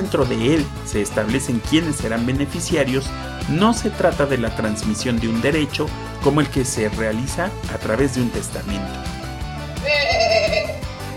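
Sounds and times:
steady rhythmic music bed: 0.0s - 11.1s
speech: 0.1s - 9.2s
single wavering sheep bleat: 9.8s - 10.9s.

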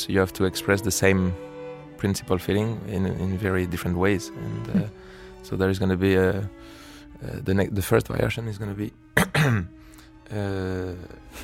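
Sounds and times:
speech: 0.0s - 11.4s
sharp cough: 9.2s - 9.7s
strained voiced throat hacking: 9.2s - 9.7s.

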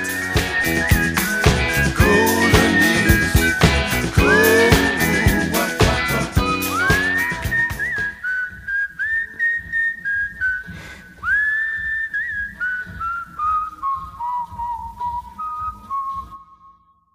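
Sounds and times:
instrumental backing music: 0.0s - 8.2s
person whistling a melody: 0.0s - 17.1s.

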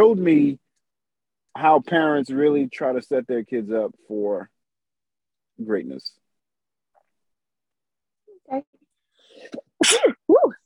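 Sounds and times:
speech: 0.0s - 0.6s, 1.6s - 4.5s, 5.6s - 6.2s, 8.5s - 8.8s, 9.4s - 10.2s
person sneezing loudly: 9.4s - 10.3s.

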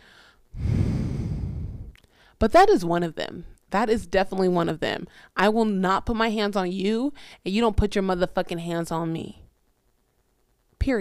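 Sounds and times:
loud heavy breath exhale: 0.0s - 2.4s
speech: 2.4s - 9.4s, 10.8s - 11.0s.

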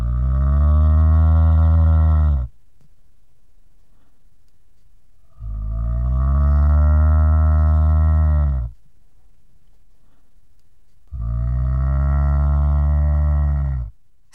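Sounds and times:
cow mooing: 0.0s - 2.5s, 5.4s - 8.7s, 11.1s - 13.9s.

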